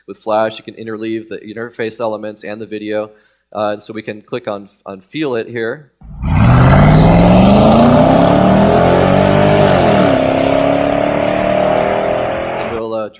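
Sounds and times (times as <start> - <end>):
speech: 0.0 - 6.2
car engine revving as it accelerates: 6.0 - 12.8.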